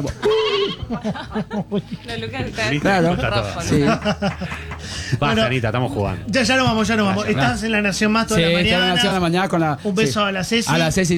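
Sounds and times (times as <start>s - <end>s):
speech: 0.0s - 0.3s, 0.9s - 11.1s
laughter: 0.0s - 9.3s
person imitating sheep bleating: 0.1s - 0.9s.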